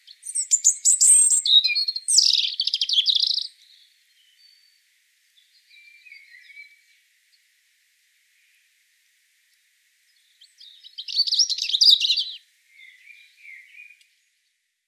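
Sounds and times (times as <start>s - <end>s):
European robin singing, Erithacus rubecula: 0.0s - 4.8s, 5.4s - 7.0s, 10.2s - 14.0s.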